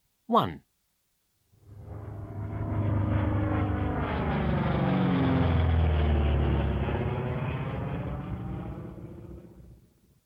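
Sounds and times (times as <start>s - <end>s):
speech: 0.3s - 0.7s
airplane engine roar passing overhead: 1.6s - 10.0s.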